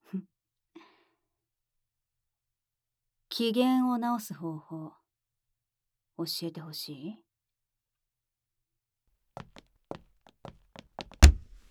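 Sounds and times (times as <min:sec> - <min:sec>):
speech: 0:00.1 - 0:00.3, 0:03.4 - 0:05.0, 0:06.2 - 0:07.2
soft taps and knocks: 0:10.4 - 0:11.6
hand slamming against a wall: 0:11.0 - 0:11.6.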